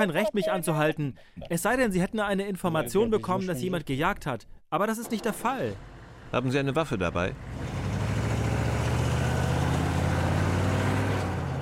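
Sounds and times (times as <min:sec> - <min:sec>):
speech: 0:00.0 - 0:07.8
car engine accelerating away from environmental inspectors: 0:05.0 - 0:11.6.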